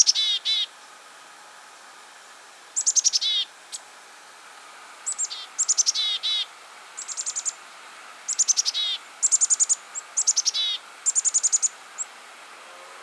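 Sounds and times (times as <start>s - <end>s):
Black-capped chickadee Poecile atricapillus calls: 0.0s - 0.8s, 2.7s - 4.0s, 5.0s - 12.2s
faint hiss: 0.0s - 13.0s.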